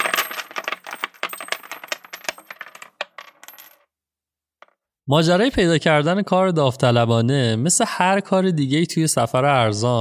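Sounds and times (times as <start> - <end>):
coins clinking and jingling into the bottom of a metal can: 0.0 - 3.8
speech: 5.1 - 10.0.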